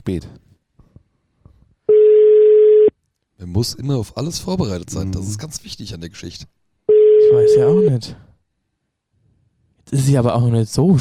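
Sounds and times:
speech: 0:00.0 - 0:00.4, 0:03.4 - 0:06.6, 0:07.3 - 0:08.2, 0:09.9 - 0:11.0
telephone line tone while placing a call: 0:01.9 - 0:02.9, 0:06.9 - 0:07.9.

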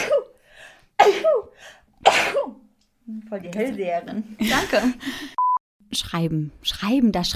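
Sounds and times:
person sneezing: 0:00.0 - 0:00.3, 0:01.0 - 0:02.6
breathy inhales: 0:00.3 - 0:01.9
speech: 0:01.0 - 0:07.3.

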